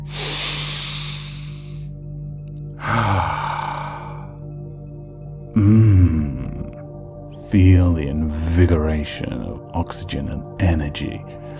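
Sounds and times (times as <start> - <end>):
deep breaths drawn in slowly: 0.0 - 1.9, 2.8 - 4.3
steady low hum: 0.0 - 11.5
speech: 7.5 - 11.4.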